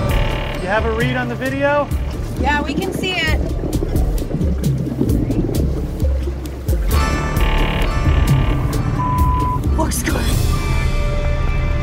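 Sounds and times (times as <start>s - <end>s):
buzzing mechanical whine: 0.0s - 1.1s, 7.0s - 9.6s
water noise: 0.0s - 10.5s
boat's port engine running: 0.0s - 11.8s
speech: 0.7s - 3.6s, 9.9s - 10.5s.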